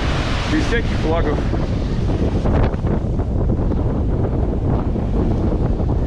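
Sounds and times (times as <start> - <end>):
ocean surf roaring: 0.0 - 6.0
strong wind buffeting the microphone by the ocean: 0.0 - 6.0
speech: 0.5 - 3.1.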